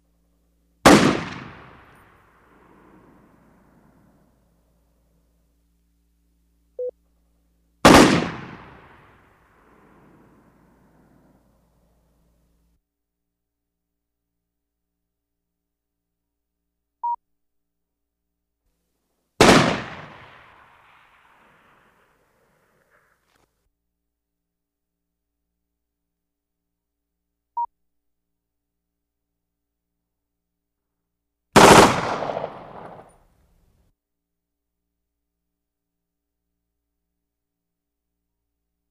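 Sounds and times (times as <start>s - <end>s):
gunshots: 0.9s - 2.0s, 7.9s - 9.2s, 19.4s - 22.2s, 31.6s - 33.2s.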